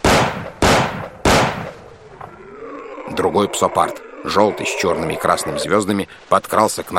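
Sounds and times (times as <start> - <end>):
Colt revolver gunshots: 0.0 - 1.8
speech: 3.1 - 6.9.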